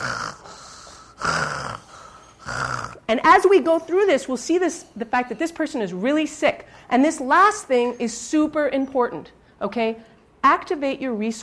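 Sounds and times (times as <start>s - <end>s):
patient snoring respirations: 0.0s - 3.1s
speech: 3.1s - 11.4s.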